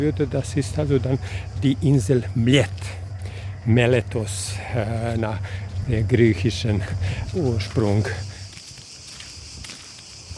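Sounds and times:
speech: 0:00.0 - 0:03.0, 0:03.6 - 0:08.3
hiss: 0:00.0 - 0:10.3
slow footsteps on a path climbing uphill on a hot day: 0:02.6 - 0:03.4, 0:04.6 - 0:10.3.

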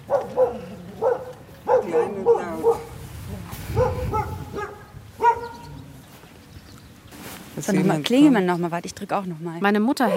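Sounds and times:
dog barking at a house in a village in Romania: 0:00.0 - 0:03.0, 0:03.7 - 0:05.7
steady murmur: 0:00.0 - 0:09.0
speech: 0:07.7 - 0:10.1.

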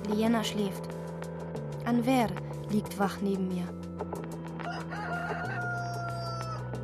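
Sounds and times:
speech: 0:00.1 - 0:01.0, 0:01.9 - 0:03.8
rooster crowing, possibly from a tape recording: 0:04.6 - 0:06.7.

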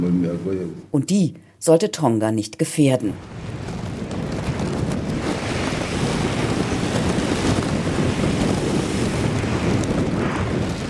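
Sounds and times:
speech: 0:00.0 - 0:03.5
wind noise: 0:03.0 - 0:10.8
waves crashing against a reef on the main island of Tonga: 0:03.2 - 0:10.8.

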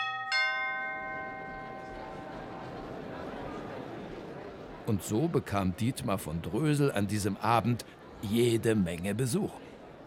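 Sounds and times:
doorbell chiming: 0:00.0 - 0:02.6
speech: 0:04.9 - 0:10.0.

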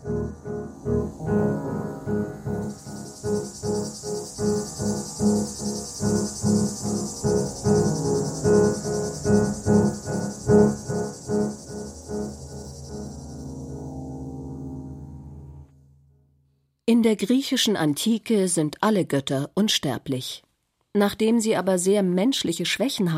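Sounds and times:
cicada chirping in a shrill pulsing drone: 0:00.0 - 0:15.6
speech: 0:17.0 - 0:23.1.

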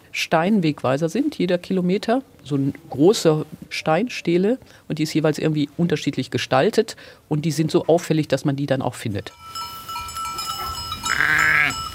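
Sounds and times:
speech: 0:00.2 - 0:09.8
sheep bleating on a village pasture: 0:10.6 - 0:11.9.

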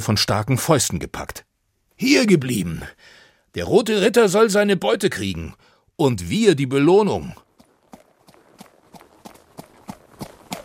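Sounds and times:
speech: 0:00.0 - 0:07.4
horse carrying a rider clip-clopping along a lakeshore path: 0:07.4 - 0:10.6.

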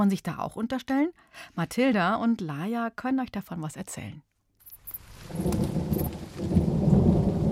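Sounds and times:
speech: 0:00.0 - 0:04.3
heavy rain: 0:04.9 - 0:07.4
deep thunder rumbling: 0:05.1 - 0:07.4.

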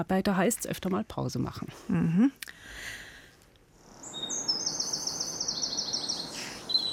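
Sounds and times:
speech: 0:00.0 - 0:03.0
soft outdoor hiss: 0:00.0 - 0:06.9
bird singing high rapid trilled phrases at dawn: 0:04.0 - 0:06.9.

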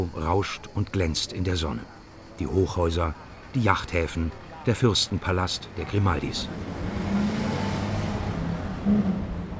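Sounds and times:
speech: 0:00.0 - 0:06.8, 0:08.9 - 0:09.2
steady roar of heavy city traffic: 0:02.2 - 0:09.5
vehicle engines passing: 0:05.2 - 0:09.5.

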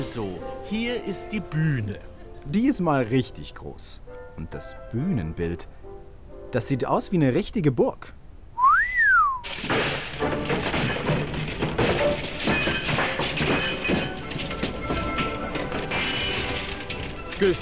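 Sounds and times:
speech: 0:00.1 - 0:05.8, 0:06.5 - 0:08.2, 0:17.4 - 0:17.6
person whistling on an opera house stage: 0:08.6 - 0:09.4
clattering and thumps of stage crew rebuilding a castle set: 0:09.4 - 0:17.6.

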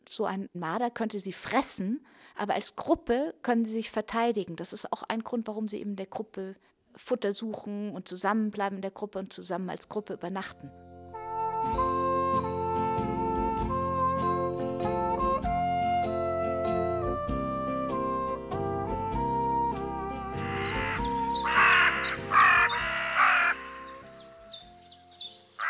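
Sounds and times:
speech: 0:00.1 - 0:10.9
steady tonal music: 0:10.7 - 0:25.0
harsh croaking raven calls: 0:20.4 - 0:24.2.

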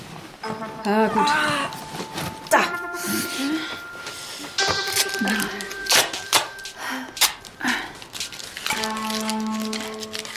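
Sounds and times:
speech: 0:00.4 - 0:01.8
steady faint tonal hum: 0:00.4 - 0:10.3
adhesive tape sticking and pressing sounds: 0:04.6 - 0:10.3
adhesive tape crackling and ripping to tape down a device's base and cable: 0:04.9 - 0:06.5, 0:07.2 - 0:10.3.

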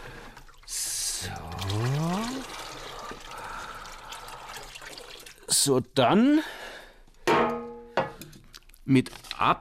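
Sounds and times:
malt extract pouring into a plastic fermenting bucket: 0:00.0 - 0:05.6
speech: 0:01.2 - 0:02.1, 0:05.6 - 0:06.6, 0:08.9 - 0:09.5.

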